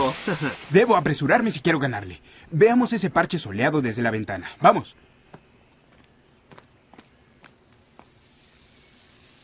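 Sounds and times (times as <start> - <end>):
speech: 0.1 - 5.4
soft footsteps outdoors: 5.3 - 8.2
diamondback rattlesnake shaking its tail rattle: 7.6 - 9.4.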